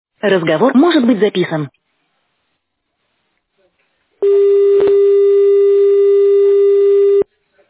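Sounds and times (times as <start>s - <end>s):
speech: 0.2s - 1.8s
long telephone ringing tone: 4.2s - 7.2s.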